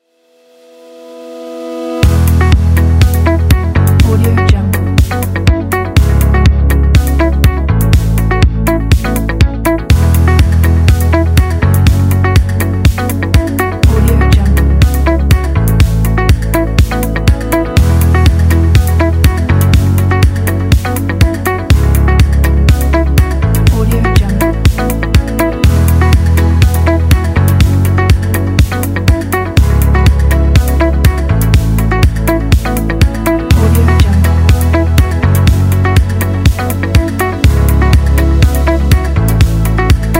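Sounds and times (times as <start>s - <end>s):
simple positive ambient music: 0.2s - 40.1s.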